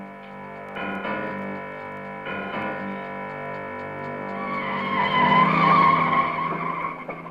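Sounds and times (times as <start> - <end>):
car engine revving: 0.4 - 7.3
car tires screeching and skidding through sharp turns in the rain: 4.4 - 7.3.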